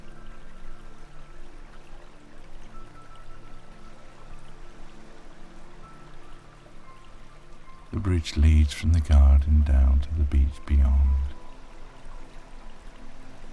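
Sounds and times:
shallow stream water rippling over stones under a garden footbridge: 0.0 - 13.5
speech: 8.0 - 11.4.

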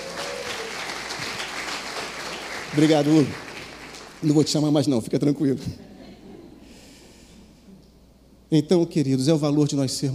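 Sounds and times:
audience applause for a volunteer during a talk: 0.0 - 4.3
speech: 2.7 - 3.4, 4.2 - 5.9, 8.5 - 10.1.

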